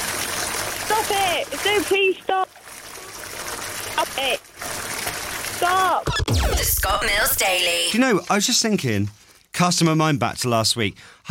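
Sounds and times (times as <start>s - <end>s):
water trickling: 0.0s - 7.6s
speech: 0.9s - 2.6s, 4.0s - 4.4s, 5.6s - 11.2s.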